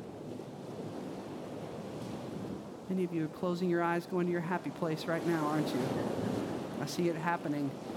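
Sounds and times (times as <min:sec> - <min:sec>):
ocean surf washing against the shore: 0:00.0 - 0:07.9
speech: 0:02.9 - 0:06.2, 0:06.8 - 0:07.9.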